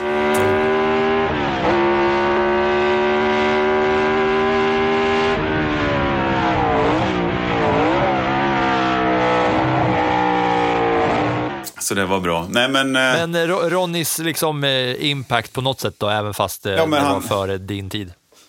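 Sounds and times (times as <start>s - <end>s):
V8 racing engine revving: 0.0s - 11.6s
speech: 11.9s - 18.2s.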